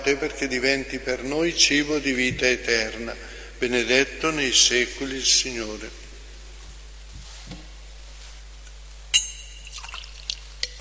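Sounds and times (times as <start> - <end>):
speech: 0.0 - 6.0
faint low hum: 0.0 - 10.7
clink at the rim of a metal wine chalice: 9.2 - 10.0
water dripping and trickling into a metal wine chalice: 9.6 - 10.7.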